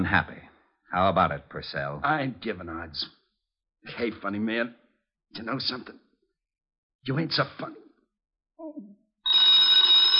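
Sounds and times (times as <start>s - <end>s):
speech: 0.0s - 3.2s, 3.8s - 6.0s, 7.0s - 7.8s
telephone bell ringing: 9.3s - 10.1s.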